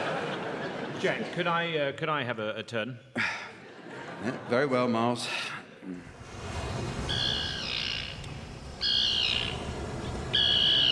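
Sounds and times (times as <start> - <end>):
laughter: 0.0 - 1.9, 3.2 - 6.2
steady hiss: 0.0 - 10.9
speech: 1.0 - 3.4, 4.2 - 6.2
tern calling in harsh rasping bursts: 6.9 - 10.9.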